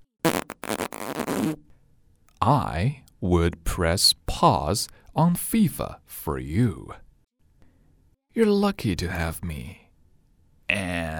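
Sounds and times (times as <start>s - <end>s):
loud sputtering fart: 0.1s - 1.6s
speech: 2.4s - 7.0s, 8.4s - 9.8s, 10.7s - 11.1s.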